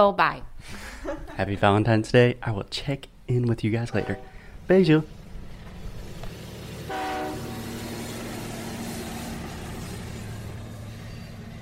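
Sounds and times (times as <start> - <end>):
speech: 0.0 - 5.2
laughter: 0.8 - 1.8
general station ambience on a platform: 3.2 - 11.6
rumble of a passing or idling train: 3.3 - 11.6
train horn: 3.9 - 4.6, 6.8 - 7.9.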